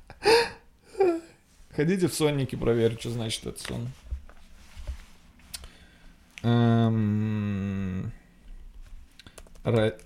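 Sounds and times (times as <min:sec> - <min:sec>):
speech: 0:01.8 - 0:04.0, 0:06.4 - 0:08.1, 0:09.6 - 0:10.0
typing on a computer keyboard: 0:09.2 - 0:10.0.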